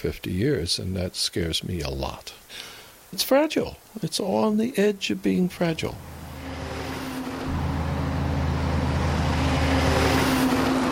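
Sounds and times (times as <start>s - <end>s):
speech: 0.0s - 6.1s
tire and road noise: 5.8s - 10.9s
vehicle deep engine rumble on a road along a river: 5.8s - 10.9s.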